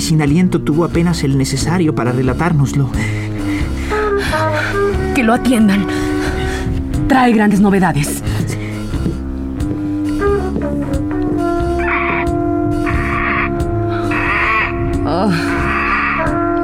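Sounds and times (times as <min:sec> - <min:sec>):
steady droning musical background: 0:00.0 - 0:16.6
speech: 0:00.1 - 0:03.6, 0:04.5 - 0:06.1, 0:07.1 - 0:08.3, 0:15.2 - 0:15.5
crow cawing hoarsely: 0:11.6 - 0:16.5.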